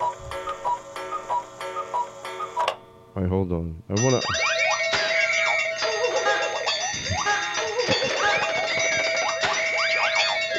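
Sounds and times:
cuckoo clock ticking: 0:00.0 - 0:02.8, 0:04.0 - 0:10.5
speech: 0:03.2 - 0:04.4.

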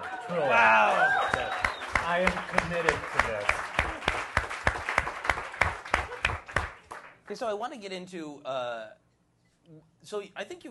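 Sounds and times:
audience applause: 0:00.0 - 0:07.1
speech: 0:00.3 - 0:01.2, 0:02.1 - 0:03.6, 0:07.3 - 0:09.0, 0:09.7 - 0:10.7.

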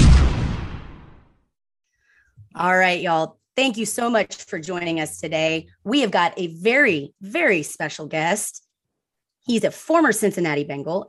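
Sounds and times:
cannon blast: 0:00.0 - 0:01.3
speech: 0:02.6 - 0:08.6, 0:09.4 - 0:11.0.

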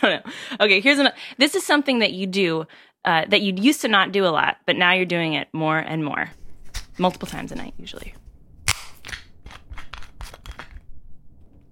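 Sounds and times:
speech: 0:00.0 - 0:06.4, 0:07.0 - 0:08.2
metal screw cap twisted off a bottle: 0:08.7 - 0:10.9.

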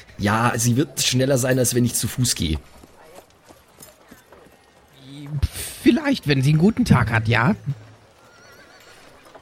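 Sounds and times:
speech: 0:00.2 - 0:02.9, 0:06.0 - 0:07.8
old horse neighing: 0:07.6 - 0:09.2.

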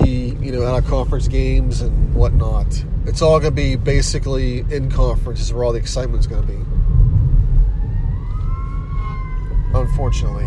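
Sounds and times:
road and engine rumble: 0:00.0 - 0:10.4
speech: 0:00.5 - 0:06.9, 0:09.7 - 0:10.4
fire truck siren wailing: 0:06.7 - 0:10.4.

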